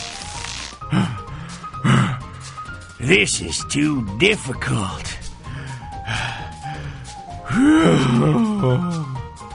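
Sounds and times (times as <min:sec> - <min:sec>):
speech: 0:00.9 - 0:01.2, 0:03.0 - 0:05.2, 0:07.6 - 0:09.1
man groaning and moaning with strained effort while pulling leaves: 0:00.9 - 0:02.3, 0:07.4 - 0:09.4
man grunting breathily: 0:07.5 - 0:09.2.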